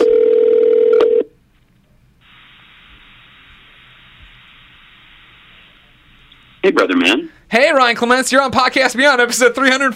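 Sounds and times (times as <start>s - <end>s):
telephone ringing for an incoming call: 0.0s - 1.3s
speech: 6.8s - 9.9s.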